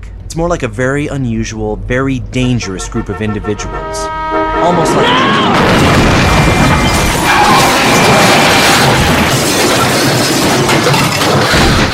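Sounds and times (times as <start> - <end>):
speech: 0.4 - 6.1
SUV smashing into side of car: 4.8 - 11.9
crunching metal: 5.4 - 11.9.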